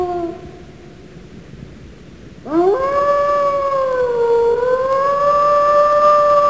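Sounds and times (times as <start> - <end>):
wolf howling at night: 0.0 - 0.6, 2.5 - 6.4.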